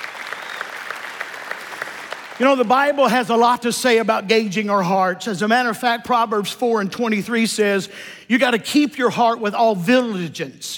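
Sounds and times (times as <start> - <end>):
audience clapping hands in praise to God: 0.0 - 3.2
speech: 2.4 - 10.7.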